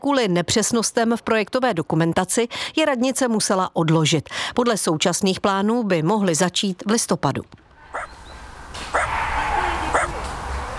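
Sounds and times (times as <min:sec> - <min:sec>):
speech: 0:00.0 - 0:08.1
outdoor hum in a park: 0:00.0 - 0:10.7
dog barks in a park: 0:07.9 - 0:08.1, 0:08.9 - 0:10.2.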